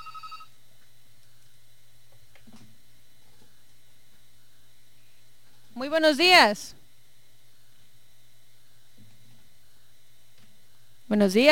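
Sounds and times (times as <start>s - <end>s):
electronic telephone ring: 0.0s - 0.5s
low steady hum: 0.0s - 11.4s
speech: 5.8s - 6.8s, 11.1s - 11.4s.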